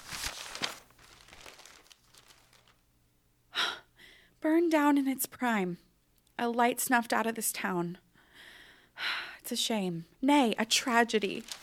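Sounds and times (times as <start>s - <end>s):
newspaper pages rustling while searching for an article: 0.0s - 2.9s, 10.8s - 11.6s
speech: 4.4s - 8.0s, 9.5s - 11.6s.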